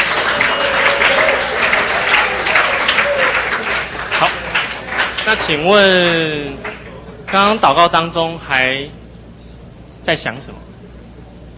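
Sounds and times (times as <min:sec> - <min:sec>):
audience applause: 0:00.0 - 0:07.4
speech: 0:05.3 - 0:06.7, 0:07.3 - 0:09.0, 0:10.0 - 0:10.7.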